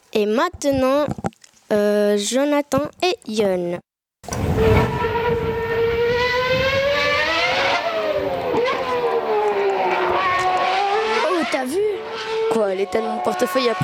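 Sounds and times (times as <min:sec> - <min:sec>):
speech: 0:00.2 - 0:05.1, 0:12.6 - 0:13.8
Formula 1 race car engines whining on the Monaco circuit: 0:04.2 - 0:13.8.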